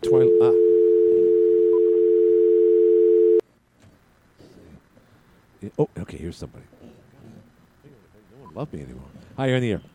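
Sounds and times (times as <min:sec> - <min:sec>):
faint noise: 0:00.0 - 0:09.9
speech: 0:00.1 - 0:00.7, 0:05.7 - 0:07.0, 0:08.6 - 0:09.9
telephone dial tone: 0:00.3 - 0:03.4.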